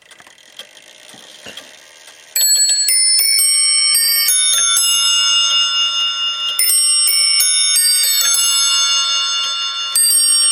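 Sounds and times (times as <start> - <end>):
English eight bell clock chiming: 2.4 - 10.5.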